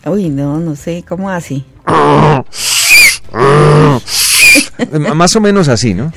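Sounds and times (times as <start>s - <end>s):
speech: 0.0s - 2.7s, 3.3s - 6.1s
donkey braying: 1.9s - 4.7s.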